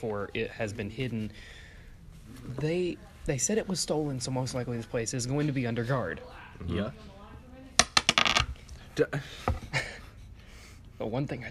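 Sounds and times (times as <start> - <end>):
speech: 0.0 - 1.7, 2.3 - 7.1, 9.0 - 9.9, 11.0 - 11.4
heavy 3-pound metal dice clattering on a table: 7.8 - 8.5.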